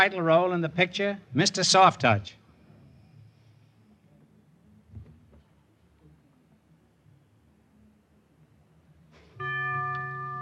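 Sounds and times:
speech: 0:00.0 - 0:02.4
quiet noise: 0:00.0 - 0:10.4
quiz show bell signaling a wrong answer: 0:09.4 - 0:10.4.

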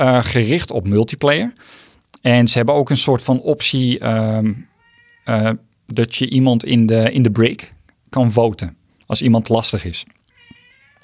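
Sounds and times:
speech: 0:00.0 - 0:04.7, 0:05.3 - 0:10.2
faint hum: 0:00.0 - 0:11.0
cat meowing with a rising tonal cry: 0:04.7 - 0:05.3, 0:10.3 - 0:11.0.

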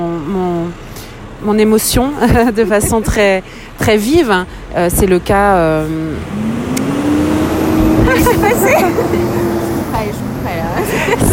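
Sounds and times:
speech: 0:00.2 - 0:06.6, 0:08.1 - 0:11.3
delivery truck engine droning past: 0:05.4 - 0:11.3
laughter: 0:07.9 - 0:09.8, 0:10.6 - 0:11.3.

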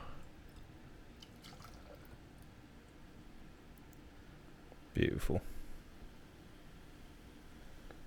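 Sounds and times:
beer pouring into a glass: 0:01.2 - 0:02.2
faint beer fizz: 0:01.2 - 0:02.2
speech: 0:05.0 - 0:05.5.

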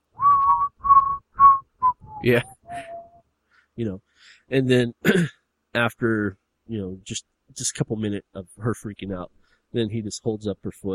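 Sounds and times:
man whistling a tune: 0:00.2 - 0:03.3
speech: 0:02.2 - 0:02.9, 0:03.8 - 0:10.9
breaths: 0:02.7 - 0:04.5, 0:09.4 - 0:09.8.

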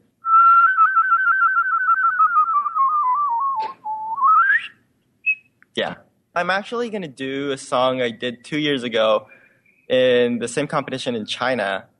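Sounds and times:
loud human whistle holding a rapid trill: 0:00.2 - 0:05.6
speech: 0:05.8 - 0:11.9.

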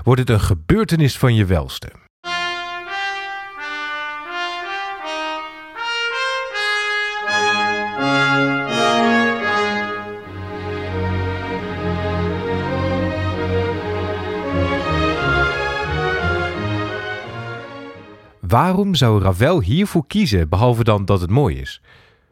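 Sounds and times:
speech: 0:00.0 - 0:02.0, 0:18.5 - 0:22.0
bright orchestral melodic line over sparse accompaniment: 0:02.2 - 0:18.4
full string section with warm low harmony: 0:02.2 - 0:18.4.

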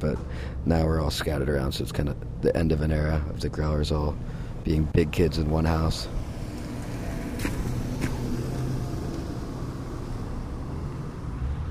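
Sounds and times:
speech: 0:00.0 - 0:06.2
car passing by: 0:06.0 - 0:11.6
car tires splashing through a puddle: 0:06.2 - 0:11.6.

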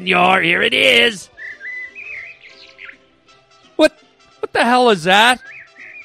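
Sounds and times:
speech: 0:00.0 - 0:01.4, 0:03.8 - 0:05.5
little bird chirping and tweeting: 0:01.2 - 0:03.8, 0:05.2 - 0:06.0.

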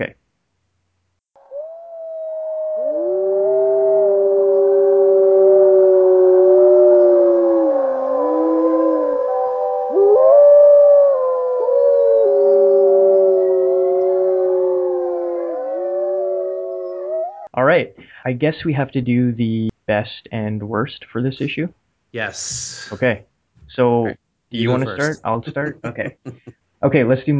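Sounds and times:
speech: 0:00.0 - 0:00.2, 0:18.3 - 0:27.3
voices howling like wolves: 0:01.5 - 0:17.5
laughter: 0:24.6 - 0:26.5.

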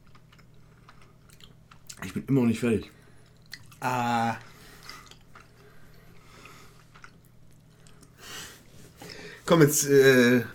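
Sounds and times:
wet chewing of food: 0:00.0 - 0:02.1, 0:03.2 - 0:08.2
speech: 0:02.0 - 0:03.0, 0:03.8 - 0:04.5, 0:09.5 - 0:10.5.

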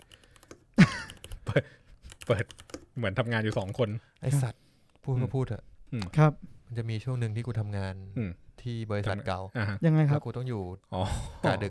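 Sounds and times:
keystrokes on a mechanical keyboard: 0:00.0 - 0:01.4, 0:02.1 - 0:03.9
speech: 0:01.6 - 0:11.6.

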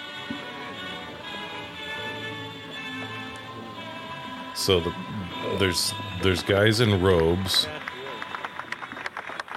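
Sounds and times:
crowd murmur: 0:00.0 - 0:09.5
speech: 0:04.6 - 0:07.8
audience clapping: 0:07.1 - 0:09.5.

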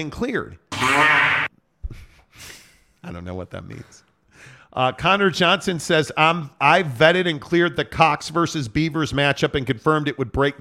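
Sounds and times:
speech: 0:00.0 - 0:01.3, 0:01.9 - 0:10.5
fart sound effect: 0:00.7 - 0:01.5.

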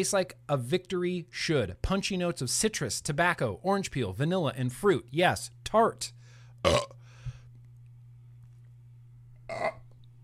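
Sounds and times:
speech: 0:00.0 - 0:07.0
low steady hum: 0:00.0 - 0:10.2
loud harsh rumbling burps: 0:06.6 - 0:07.0, 0:09.5 - 0:09.9
small throaty sound: 0:06.7 - 0:07.0.

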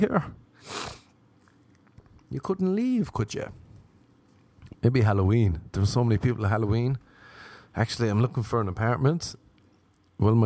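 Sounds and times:
speech: 0:00.0 - 0:01.0, 0:02.3 - 0:03.6, 0:04.8 - 0:07.1, 0:07.7 - 0:09.4, 0:10.2 - 0:10.4
sharp nasal sniff from allergies or cold: 0:00.6 - 0:01.2.

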